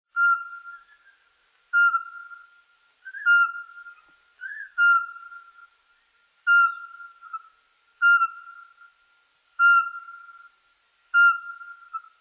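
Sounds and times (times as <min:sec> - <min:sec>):
Eurasian pygmy owl giving short even whistled notes: 0:00.1 - 0:05.7, 0:06.5 - 0:08.8, 0:09.6 - 0:10.5, 0:11.1 - 0:12.1.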